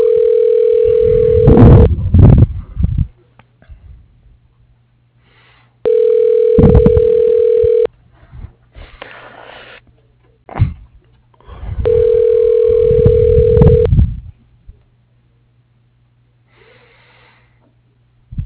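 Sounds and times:
long steady mid-pitched telephone line tones during call transfer: 0:00.0 - 0:01.9, 0:05.8 - 0:07.9, 0:11.9 - 0:13.9.

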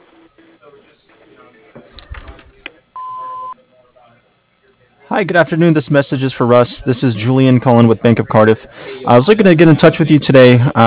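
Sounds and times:
answering machine beep: 0:03.0 - 0:03.6
speech: 0:05.1 - 0:10.8.

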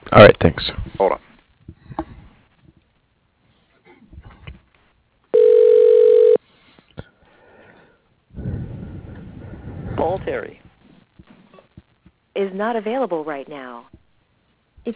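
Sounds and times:
speech: 0:00.1 - 0:01.3, 0:12.4 - 0:14.0
steady telephone tone during call transfer to voicemail: 0:05.3 - 0:06.4.

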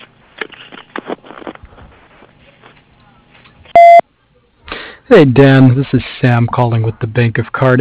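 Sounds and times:
electronic answering-machine beep: 0:03.7 - 0:04.0
speech: 0:05.1 - 0:07.8.

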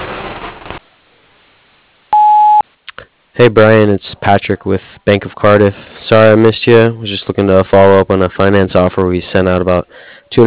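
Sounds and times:
voicemail electronic beep of a contractor business: 0:02.1 - 0:02.6
speech: 0:03.4 - 0:10.4.

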